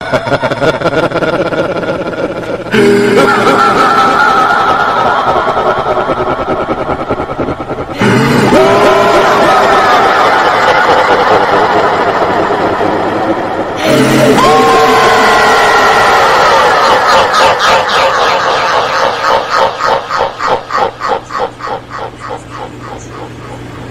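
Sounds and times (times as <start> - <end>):
evil repeating laugh: 0.0 - 23.8.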